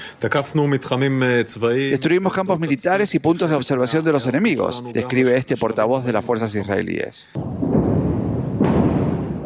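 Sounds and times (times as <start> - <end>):
speech: 0.2 - 7.7
distant explosions with deep rumbling booms: 7.4 - 9.4.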